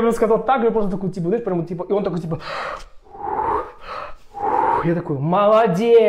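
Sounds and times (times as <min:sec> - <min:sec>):
speech: 0:00.0 - 0:02.9, 0:04.8 - 0:06.0
person imitating deep breathing during an X-ray: 0:02.4 - 0:05.1.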